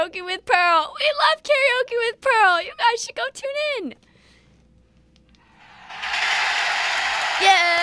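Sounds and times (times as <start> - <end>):
speech: 0.0 - 4.1
crowd cheering: 5.4 - 7.8.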